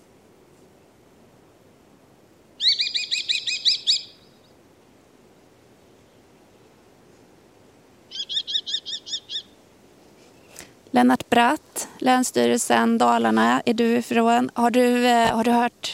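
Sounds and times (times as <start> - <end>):
soft background hiss: 0.0 - 15.9
common kestrel calling: 2.6 - 4.6, 8.1 - 9.6
speech: 11.0 - 15.9.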